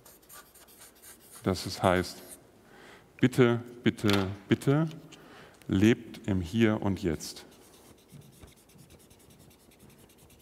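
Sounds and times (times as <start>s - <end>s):
pen scratching across paper: 0.0s - 1.5s, 7.7s - 10.4s
speech: 1.4s - 2.3s, 3.2s - 5.1s, 5.7s - 7.5s.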